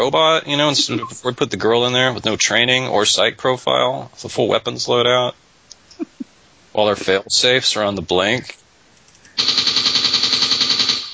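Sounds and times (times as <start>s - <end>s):
speech: 0.0s - 5.4s, 6.8s - 8.6s
machine gun fire in a video game: 9.4s - 11.1s.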